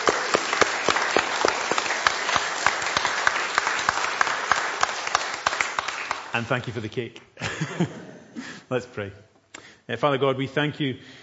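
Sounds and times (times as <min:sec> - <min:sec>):
church audience applauding after a wedding anniversary service: 0:00.0 - 0:06.8
speech: 0:06.3 - 0:09.3, 0:09.9 - 0:11.2
laughter: 0:07.4 - 0:08.6.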